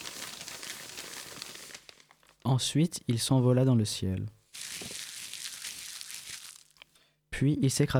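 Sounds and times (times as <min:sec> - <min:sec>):
paper crinkling and crumpling as a sound effect for leaves in a storm: 0:00.0 - 0:02.4, 0:04.6 - 0:06.8
speech: 0:02.4 - 0:04.4, 0:07.4 - 0:07.9.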